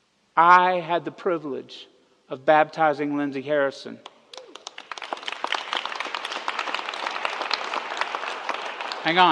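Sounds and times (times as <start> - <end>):
speech: 0.4 - 4.1, 9.0 - 9.3
crowd applauding: 4.3 - 9.3.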